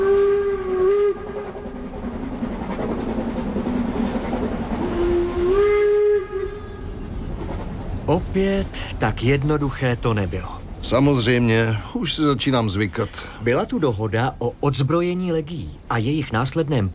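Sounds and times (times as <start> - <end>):
steam train whistle blowing: 0.0 - 1.6, 4.8 - 7.0
steam train travelling toward Siberia: 0.0 - 16.9
speech: 8.1 - 16.9.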